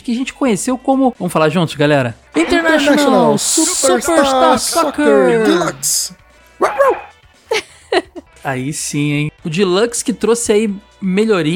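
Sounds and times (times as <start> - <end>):
speech: 0.1 - 11.5
person imitating a small dog barking: 2.4 - 5.9, 6.6 - 7.1
laughter: 2.4 - 6.0, 6.6 - 8.3.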